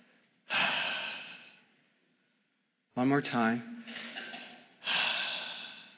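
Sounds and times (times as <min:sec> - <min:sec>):
person breathing out: 0:00.5 - 0:01.7, 0:04.8 - 0:05.9
speech: 0:03.0 - 0:04.1.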